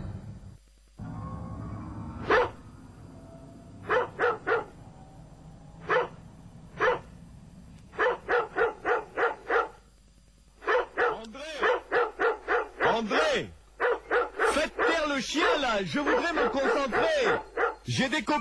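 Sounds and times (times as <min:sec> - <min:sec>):
low rumble: 0:00.1 - 0:11.2
dog barking outside: 0:02.2 - 0:02.6, 0:03.8 - 0:04.8, 0:05.8 - 0:07.1, 0:07.9 - 0:09.9, 0:10.6 - 0:13.0, 0:13.8 - 0:17.9
speech: 0:15.8 - 0:18.3.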